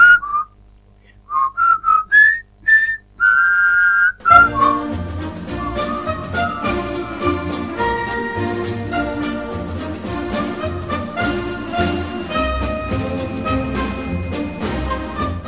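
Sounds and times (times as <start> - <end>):
person whistling a short melody: 0.0 - 0.5, 1.3 - 6.1
full band of music: 4.2 - 15.4.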